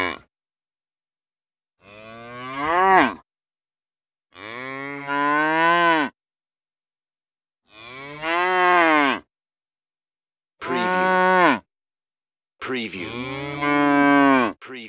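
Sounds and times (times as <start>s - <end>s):
cow giving drawn-out moos: 0.0s - 0.2s, 1.8s - 3.2s, 4.4s - 6.2s, 7.7s - 9.3s, 10.6s - 11.6s, 13.0s - 14.6s
speech: 12.7s - 13.4s.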